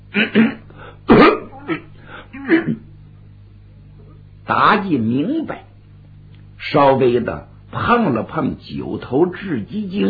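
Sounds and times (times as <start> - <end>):
speech: 0.1 - 0.6, 4.5 - 5.7, 6.7 - 10.0
male storyteller imitating coughing and throat-clearing: 0.1 - 2.9.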